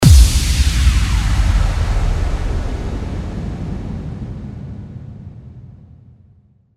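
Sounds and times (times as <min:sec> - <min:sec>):
downlifter kick drum: 0:00.0 - 0:03.0.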